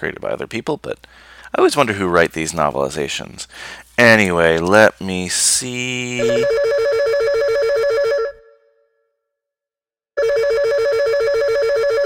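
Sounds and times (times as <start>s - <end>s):
speech: 0.0s - 6.9s
telephone ringing with an electronic trill: 6.2s - 8.4s, 10.2s - 12.0s.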